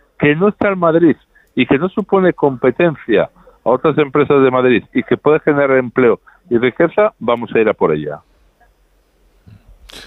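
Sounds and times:
speech: 0.2 - 8.3
person sneezing: 9.5 - 10.0.

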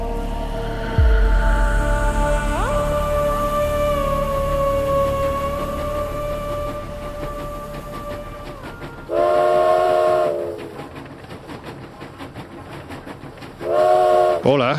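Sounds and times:
loud sustained narrow-gauge train horn blasts: 0.0 - 10.8, 13.6 - 14.5
narrow-gauge train rumbling along rails through the Sacred Valley heights: 0.0 - 14.7
speech: 14.4 - 14.7.

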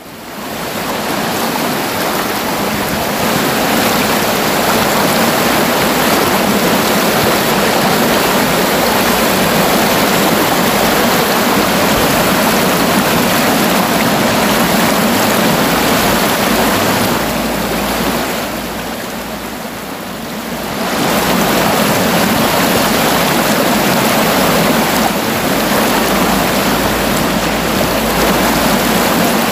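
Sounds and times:
river water flowing over rocks: 0.0 - 29.4.

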